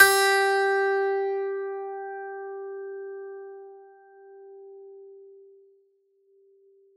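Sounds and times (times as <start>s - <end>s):
plucked strings: 0.0s - 2.0s.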